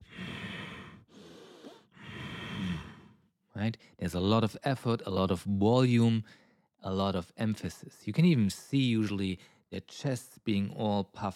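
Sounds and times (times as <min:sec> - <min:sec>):
strong forceful breathing in and out during Ashtanga Vinyasa yoga practice: 0:00.0 - 0:04.0
speech: 0:03.6 - 0:11.3.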